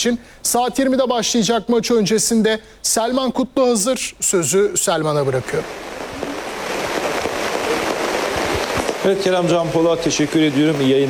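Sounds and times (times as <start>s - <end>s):
speech: 0.0s - 6.0s, 9.0s - 11.0s
heavy rain pouring in Rize ahead of a football match: 5.0s - 11.0s.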